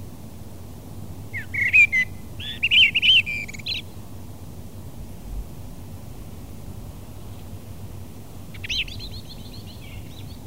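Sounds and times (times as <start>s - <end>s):
common blackbird singing: 1.3s - 3.9s, 8.5s - 10.4s.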